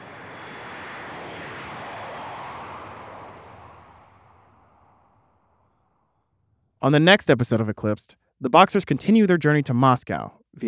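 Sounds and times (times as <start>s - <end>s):
airplane taking off: 0.0s - 5.9s
speech: 6.8s - 10.6s.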